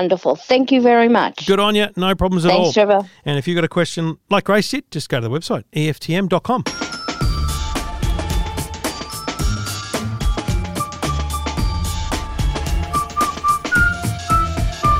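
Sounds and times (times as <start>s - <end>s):
speech: 0.0s - 6.8s
bright punchy musical backing with steady drum hits: 6.6s - 14.9s
catchy whistled jingle melody: 6.7s - 14.9s.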